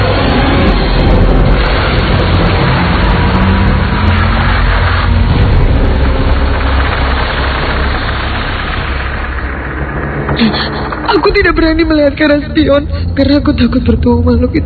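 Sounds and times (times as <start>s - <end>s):
car engine revving and roaring as the vehicle speeds along: 0.0s - 11.4s
speech: 11.4s - 14.6s.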